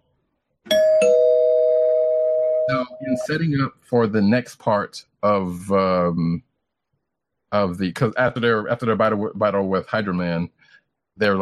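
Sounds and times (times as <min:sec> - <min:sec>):
doorbell two-note ding-dong chime: 0:00.7 - 0:03.3
speech: 0:02.7 - 0:06.5, 0:07.5 - 0:11.4.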